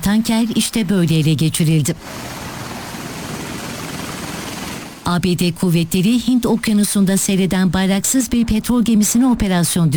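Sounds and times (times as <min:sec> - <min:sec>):
speech: 0:00.0 - 0:02.5, 0:05.1 - 0:09.9
military helicopter putting soldiers down onto an oil tanker's deck in the Indian Ocean: 0:01.9 - 0:05.2.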